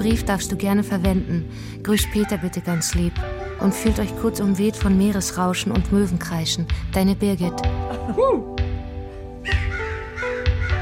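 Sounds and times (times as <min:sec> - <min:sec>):
speech: 0:00.0 - 0:08.6
crow cawing: 0:09.4 - 0:10.8.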